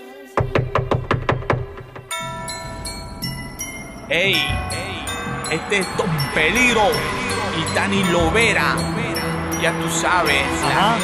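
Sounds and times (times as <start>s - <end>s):
music: 0.0s - 11.0s
knocking on a door: 0.4s - 9.0s
speech: 4.1s - 9.0s, 9.6s - 11.0s.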